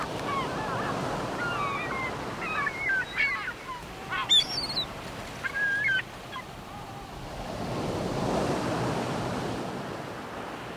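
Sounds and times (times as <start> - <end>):
gull calls by the sea: 0.0 - 7.2
surf rushing by the sea: 0.0 - 10.6.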